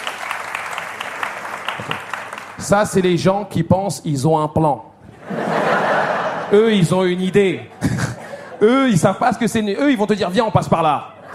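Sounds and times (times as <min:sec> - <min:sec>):
audience applause answering a performer's call: 0:00.0 - 0:02.7
speech: 0:01.8 - 0:05.5, 0:06.5 - 0:07.9, 0:08.6 - 0:11.2
laughter: 0:05.1 - 0:09.5, 0:10.3 - 0:11.3.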